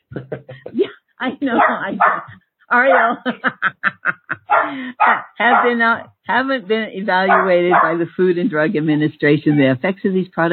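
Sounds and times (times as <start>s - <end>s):
laughter: 0.0s - 5.1s
speech: 0.2s - 10.5s
guard dog barking: 1.5s - 3.2s, 4.4s - 5.9s, 7.2s - 8.0s.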